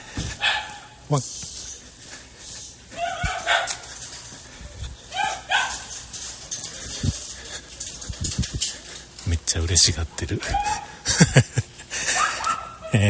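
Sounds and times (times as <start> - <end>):
street noise: 0.0 - 13.0
dog barking: 0.4 - 1.0, 3.0 - 3.9, 5.1 - 5.9, 10.5 - 11.0, 12.1 - 13.0
speech: 1.1 - 1.5, 9.5 - 11.6
laughter: 10.4 - 12.6.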